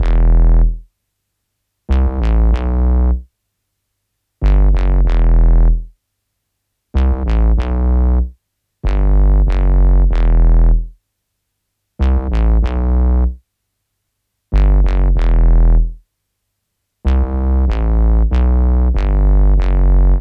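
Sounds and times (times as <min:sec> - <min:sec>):
bassline in E minor: 0:00.0 - 0:00.9, 0:01.9 - 0:03.3, 0:04.4 - 0:05.9, 0:07.0 - 0:11.0, 0:12.0 - 0:13.4, 0:14.5 - 0:16.0, 0:17.0 - 0:20.1.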